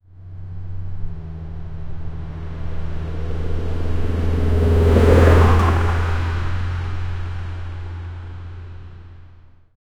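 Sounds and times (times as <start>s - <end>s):
four by four jeep driving: 0.0s - 9.7s.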